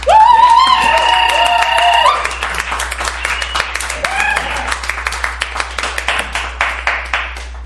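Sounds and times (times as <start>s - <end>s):
loud whoops and cheers: 0.0s - 2.6s, 3.2s - 4.9s
live audience applauding to vote for the winner of a debate: 0.0s - 7.6s.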